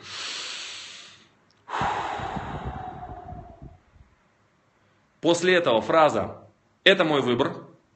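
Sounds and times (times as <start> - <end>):
long loud exhale: 0.0 - 3.8
slow deep inhale through the nose: 0.0 - 3.8
speech: 5.2 - 7.6.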